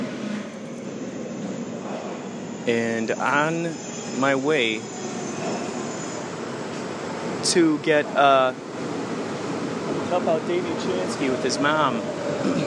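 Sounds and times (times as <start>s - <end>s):
subway train idling or rolling through a subway station: 0.0s - 12.6s
speech: 2.6s - 5.0s, 7.4s - 8.9s, 10.1s - 12.6s.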